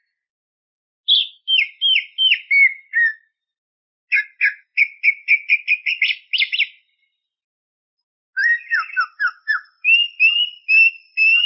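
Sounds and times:
greater green leafbird whistled chirping song: 0:01.1 - 0:03.4, 0:04.1 - 0:07.2, 0:08.4 - 0:11.4.

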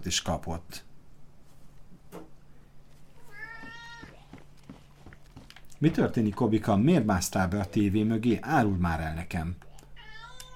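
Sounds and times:
speech: 0:00.0 - 0:00.9, 0:05.8 - 0:09.7
quiet hum: 0:00.0 - 0:10.5
pet cat meowing in a home: 0:03.2 - 0:04.4, 0:09.8 - 0:10.5.

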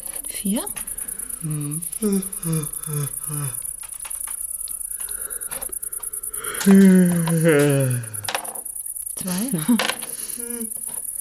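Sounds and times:
pet shop cricket chirping: 0:00.0 - 0:11.1
speech: 0:00.4 - 0:00.8, 0:01.4 - 0:03.6, 0:06.6 - 0:08.1, 0:09.2 - 0:10.0, 0:10.6 - 0:10.8
brief vocal sound: 0:01.3 - 0:03.6, 0:06.5 - 0:08.3.

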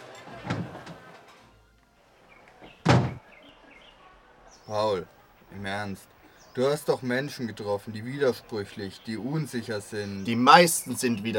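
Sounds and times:
wooden door thunks as people step outside: 0:00.4 - 0:01.0, 0:02.8 - 0:03.2
speech: 0:04.7 - 0:11.3.

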